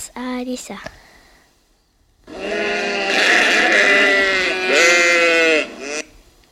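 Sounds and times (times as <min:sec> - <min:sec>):
speech: 0:00.2 - 0:01.0
sheep bleating: 0:02.3 - 0:06.1.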